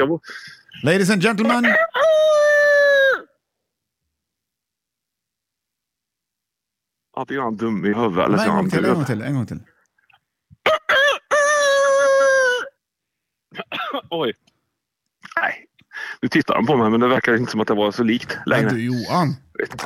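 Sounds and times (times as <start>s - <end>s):
speech: 0.0s - 1.9s, 7.2s - 9.7s, 13.6s - 14.5s, 15.4s - 19.8s
person imitating a rooster crowing: 1.4s - 3.4s, 10.7s - 12.8s.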